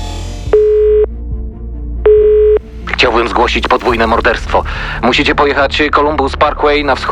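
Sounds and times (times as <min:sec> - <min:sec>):
telephone line tone beeps through a payphone receiver: 0:00.6 - 0:01.1, 0:02.1 - 0:02.6
speech: 0:03.1 - 0:07.1.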